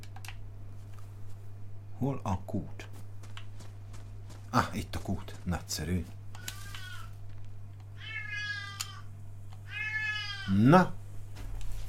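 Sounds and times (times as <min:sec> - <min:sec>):
steady low hum: 0:00.0 - 0:09.7
speech: 0:02.0 - 0:02.9, 0:04.5 - 0:06.2, 0:10.5 - 0:11.0
cat meowing: 0:06.4 - 0:07.2, 0:08.0 - 0:10.6.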